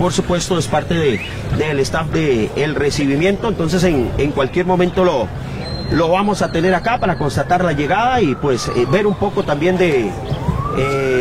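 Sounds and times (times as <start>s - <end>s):
speech: 0.0s - 11.1s
sirens wailing outside a high-performance sports training center in Costa Rica: 4.4s - 11.1s.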